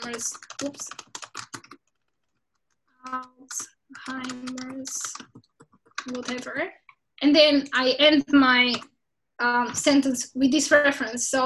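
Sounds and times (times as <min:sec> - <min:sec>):
person typing a sentence on a computer keyboard: 0:00.0 - 0:06.6, 0:08.7 - 0:08.9
speech: 0:00.2 - 0:01.1, 0:03.0 - 0:11.4.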